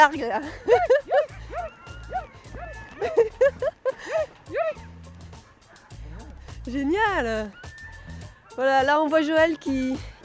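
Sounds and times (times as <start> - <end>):
speech: 0.0 - 1.3, 6.7 - 7.6, 8.6 - 10.1
sled rumbling across a lake: 0.0 - 8.2
laughter: 0.3 - 6.4
sled dogs yipping and barking: 0.5 - 9.1
sled dogs whimpering: 0.6 - 6.4, 7.0 - 8.8.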